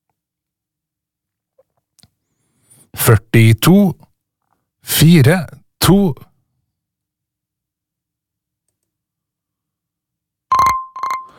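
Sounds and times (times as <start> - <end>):
speech: 3.1 - 4.1, 4.8 - 6.3
telephone bell ringing for an incoming call: 10.5 - 11.3.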